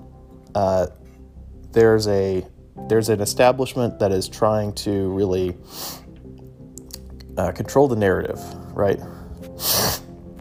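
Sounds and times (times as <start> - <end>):
speech: 0.5 - 1.0, 1.7 - 6.0, 7.4 - 9.8
sharp airy nasal sniffle: 5.7 - 6.1, 9.5 - 10.1.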